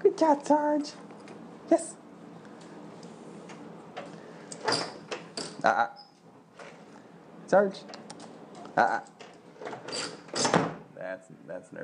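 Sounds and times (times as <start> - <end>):
speech: 0.2 - 1.0, 1.7 - 2.0, 5.6 - 6.0, 7.5 - 8.0, 8.8 - 9.1, 11.1 - 11.8
door being opened with rattling clunk and scraping: 3.4 - 5.6, 7.9 - 10.8.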